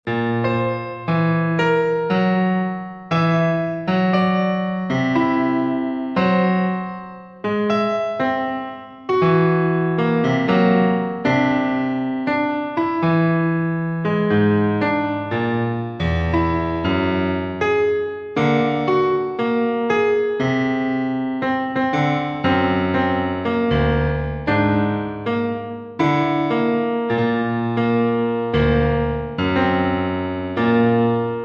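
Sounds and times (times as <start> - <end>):
piano playing whole tone scale: 0.0 - 31.4.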